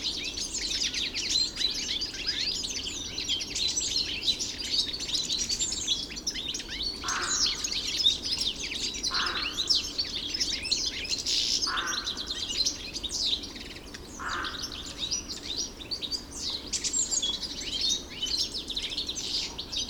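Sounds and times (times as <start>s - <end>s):
European goldfinch singing in a park: 0.0s - 19.8s
European goldfinch low rasping calls: 7.0s - 7.7s, 9.1s - 9.7s, 11.7s - 12.4s, 14.2s - 15.1s.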